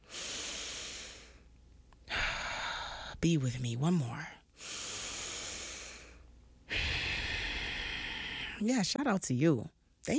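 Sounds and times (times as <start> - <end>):
deep breathing: 0.0 - 1.5, 2.1 - 3.2, 4.6 - 8.6
speech: 3.2 - 4.7, 8.6 - 10.1.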